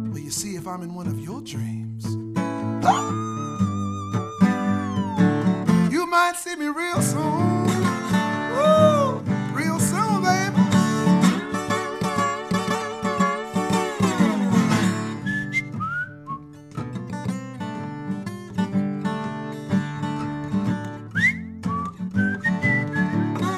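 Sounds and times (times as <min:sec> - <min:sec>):
full instrumental backing music: 0:00.0 - 0:23.5
speech: 0:00.1 - 0:02.2, 0:06.3 - 0:07.5
person whistling a lilting melody: 0:02.8 - 0:06.0, 0:08.5 - 0:09.2, 0:11.2 - 0:17.0, 0:21.1 - 0:23.5.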